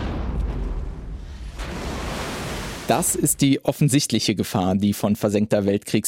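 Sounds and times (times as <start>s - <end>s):
bomb exploding underwater: 0.0s - 3.5s
speech: 2.9s - 6.0s.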